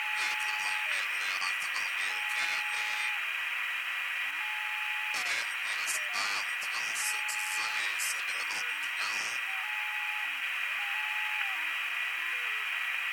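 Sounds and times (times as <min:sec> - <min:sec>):
radio static: 0:00.0 - 0:13.1.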